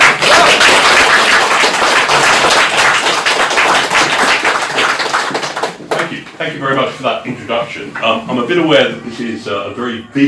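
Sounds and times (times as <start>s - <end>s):
audience applause: 0.0s - 6.2s
speech: 6.4s - 10.2s.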